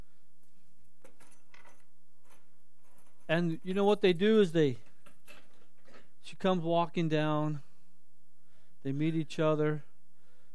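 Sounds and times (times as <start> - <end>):
keys jangling as they are set down: 1.0 - 6.0
speech: 3.3 - 4.8, 6.3 - 7.7, 8.8 - 9.9.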